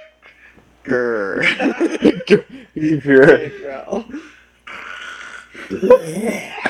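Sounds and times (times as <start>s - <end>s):
speech: 0.8s - 4.2s, 5.7s - 6.6s
rough throaty coughing and hacking: 4.7s - 6.6s.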